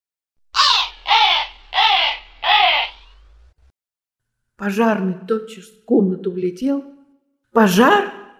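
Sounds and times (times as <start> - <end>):
crow cawing: 0.6 - 3.3
speech: 4.6 - 6.9, 7.6 - 8.2.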